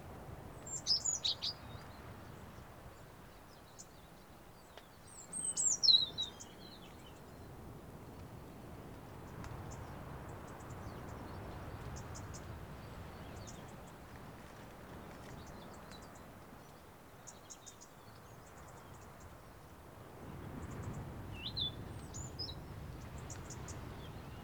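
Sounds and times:
steady background noise: 0:00.0 - 0:24.4
European robin Erithacus rubecula twittering: 0:00.7 - 0:01.6, 0:05.2 - 0:06.6.

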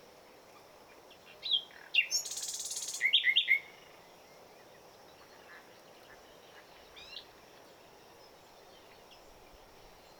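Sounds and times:
common nightingale Luscinia megarhynchos singing: 0:01.4 - 0:03.7.

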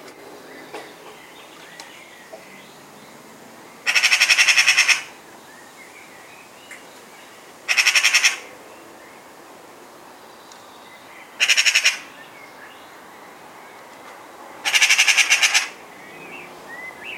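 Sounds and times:
Eurasian magpie Pica pica chattering in rasping rattles: 0:03.9 - 0:05.2, 0:07.7 - 0:08.5, 0:11.4 - 0:12.1, 0:14.6 - 0:15.8.

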